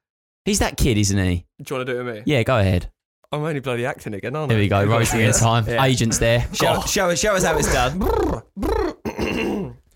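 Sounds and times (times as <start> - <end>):
speech: 0.4 - 8.8
person yawning loudly while stretching: 7.6 - 9.8.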